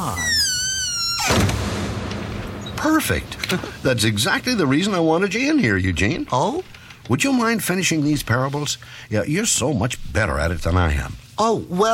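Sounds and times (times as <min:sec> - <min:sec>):
barn door creaking: 0:00.0 - 0:03.0
barn door banging shut: 0:01.1 - 0:03.2
speech: 0:02.8 - 0:11.9.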